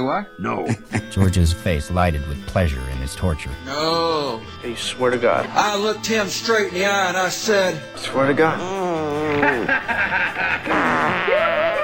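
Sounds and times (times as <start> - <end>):
speech: 0.0 - 11.4
laughter: 8.3 - 11.8
voice imitating a low buzzing farting noise: 8.6 - 9.6, 10.7 - 11.8.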